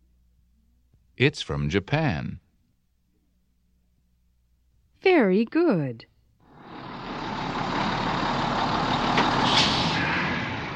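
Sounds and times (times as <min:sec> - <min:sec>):
speech: 0:01.2 - 0:02.4, 0:05.0 - 0:06.1
broad road noise: 0:06.4 - 0:10.7
bus engine rumble as the bus pulls up at a bus stop: 0:06.5 - 0:10.7
bus air brakes hissing: 0:09.0 - 0:10.7.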